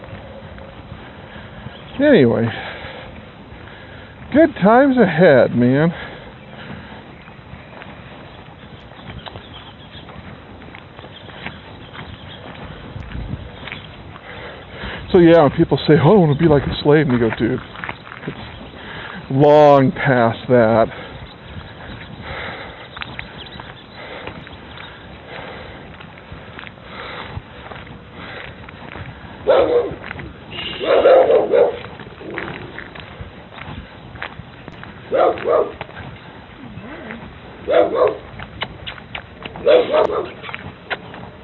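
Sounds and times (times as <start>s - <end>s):
speech: 2.0s - 2.6s, 4.4s - 6.0s, 15.2s - 18.4s, 19.3s - 21.0s
dog barking: 29.5s - 30.0s, 30.6s - 31.9s, 35.1s - 35.8s, 37.6s - 38.3s, 39.6s - 40.5s
dog whimpering: 36.6s - 37.3s.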